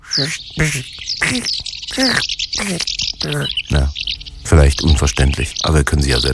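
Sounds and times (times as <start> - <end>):
person imitating a house martin call: 0.0 - 4.0
speech: 0.2 - 6.3.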